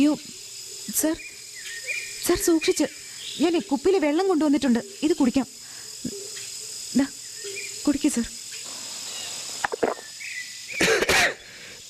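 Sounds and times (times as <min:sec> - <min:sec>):
speech: 0:00.0 - 0:01.4, 0:02.3 - 0:06.2, 0:06.9 - 0:07.2, 0:07.9 - 0:08.4
man coughing: 0:10.8 - 0:11.8.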